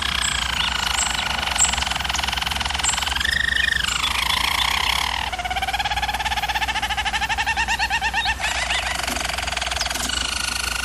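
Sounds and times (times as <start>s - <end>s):
German Roller canary singing: 0.0s - 10.8s.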